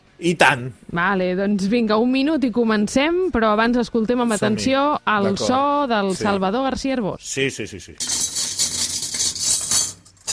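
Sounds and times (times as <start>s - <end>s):
speech: 0.2s - 8.3s
metal utensils clinking as someone rummages in a cutlery drawer: 8.0s - 10.3s.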